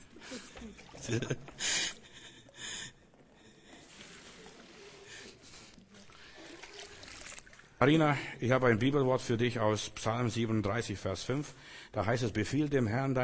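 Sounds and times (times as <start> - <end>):
water sloshing: 0.0 - 8.0
speech: 0.3 - 1.7, 7.8 - 13.2
water being scooped out: 3.7 - 7.8.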